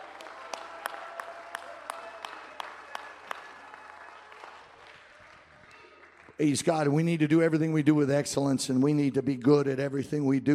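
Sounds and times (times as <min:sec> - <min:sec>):
sharp louder individual claps: 0:00.0 - 0:06.4
congregation clapping and cheering: 0:00.0 - 0:07.2
speech: 0:06.4 - 0:10.5.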